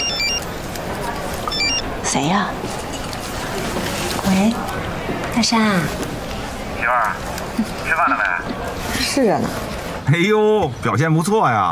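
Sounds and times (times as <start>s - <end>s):
phone ringing with short bright electronic tones: 0.0s - 0.6s, 1.4s - 2.0s
steady noisy background: 0.0s - 11.6s
speech: 2.1s - 2.8s, 3.6s - 4.8s, 5.4s - 6.1s, 6.9s - 11.6s.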